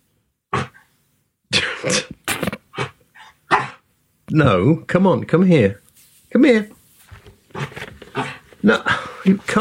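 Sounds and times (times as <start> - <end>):
dog grunting and whimpering: 0.5 - 0.9, 2.6 - 3.8, 7.5 - 8.5
speech: 1.8 - 2.2, 4.3 - 6.8, 8.6 - 9.5.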